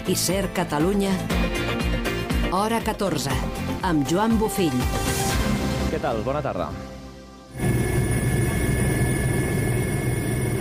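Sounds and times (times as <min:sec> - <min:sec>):
speech: 0:00.1 - 0:05.3, 0:05.9 - 0:06.9
firefighting helicopter engine and rotor roar over a wildfire in Maresme: 0:07.6 - 0:10.5.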